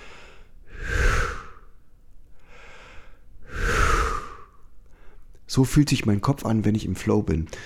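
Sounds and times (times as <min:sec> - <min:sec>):
slow deep relaxed breaths: 0:00.0 - 0:05.4, 0:07.5 - 0:07.6
speech: 0:05.5 - 0:07.6.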